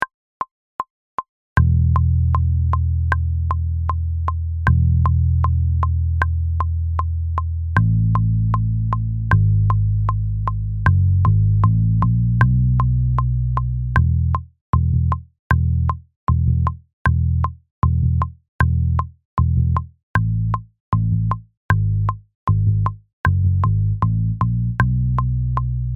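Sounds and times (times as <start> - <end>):
electric bass: 1.6 - 25.9.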